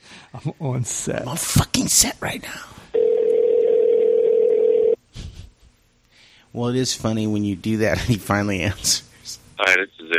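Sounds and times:
speech: 0.3 - 2.9, 6.6 - 10.1
telephone ringing tone from calling a man's phone: 3.0 - 5.0.

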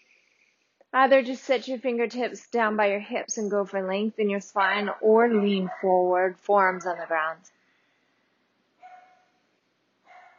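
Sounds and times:
speech: 0.9 - 7.6
dog barking: 8.8 - 9.3, 10.1 - 10.3.

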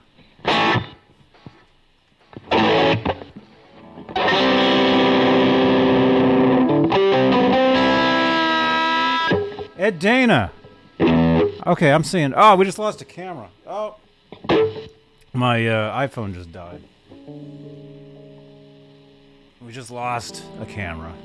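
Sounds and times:
distorted electric guitar through effects: 0.0 - 12.4, 13.6 - 15.5, 16.5 - 21.2
speech: 9.9 - 10.6, 11.6 - 14.0, 14.8 - 17.7, 19.7 - 21.2.

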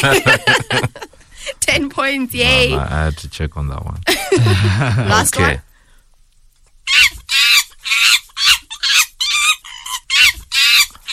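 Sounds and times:
laughter: 0.0 - 1.2, 4.1 - 5.6
speech: 0.0 - 5.7
monkey giving harsh shrill calls: 6.9 - 11.1.

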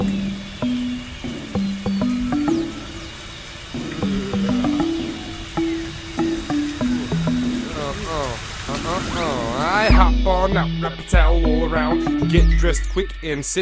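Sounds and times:
shower water running: 0.0 - 10.8
person humming or singing a wavering tune: 3.8 - 5.5, 7.0 - 13.5
speech: 10.4 - 13.5.

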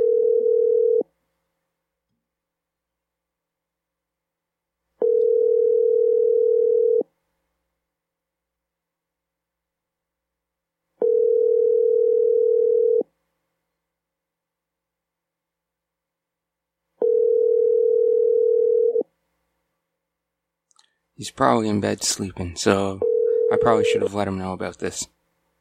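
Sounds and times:
electronic ringback tone from an outgoing phone call: 0.0 - 1.0, 5.0 - 7.0, 11.0 - 13.0, 17.0 - 19.0, 23.0 - 24.1
speech: 21.2 - 25.2.

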